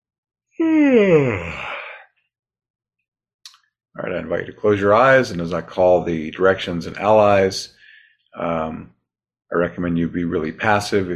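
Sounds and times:
speech: 0:00.6 - 0:01.6, 0:04.0 - 0:07.8, 0:08.4 - 0:11.1
person yawning: 0:00.6 - 0:02.0.

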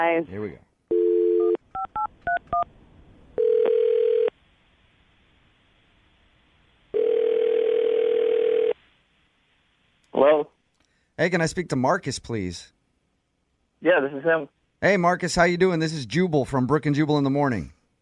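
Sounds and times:
speech: 0:00.0 - 0:00.7, 0:11.2 - 0:12.8, 0:13.8 - 0:17.8
steady telephone dial tone: 0:00.9 - 0:02.4, 0:03.4 - 0:04.3, 0:07.0 - 0:08.8.

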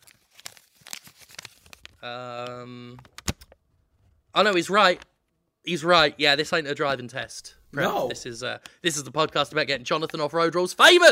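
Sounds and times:
crumpled paper balls being uncrumpled: 0:00.0 - 0:02.0
speech: 0:02.0 - 0:03.2, 0:04.4 - 0:11.1.

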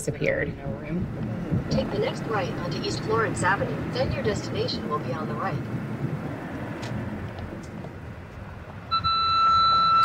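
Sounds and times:
speech: 0:00.0 - 0:06.2
low road rumble from a moving car: 0:00.0 - 0:10.0
car's bright electronic warning tone: 0:08.9 - 0:10.0.

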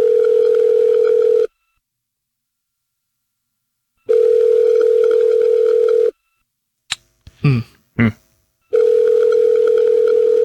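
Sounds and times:
telephone ringback tone while calling: 0:00.0 - 0:01.5, 0:04.1 - 0:06.2, 0:08.7 - 0:10.4.

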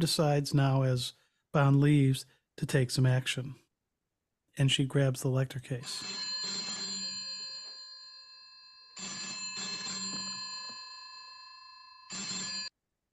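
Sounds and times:
speech: 0:00.0 - 0:03.6, 0:04.6 - 0:06.3
old-fashioned telephone bell ringing: 0:05.8 - 0:12.7.

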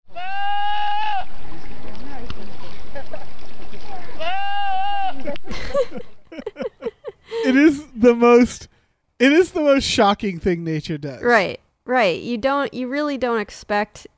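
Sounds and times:
goat screaming: 0:00.1 - 0:01.3, 0:04.2 - 0:05.3
laughter: 0:05.0 - 0:08.6
speech: 0:07.6 - 0:14.1.

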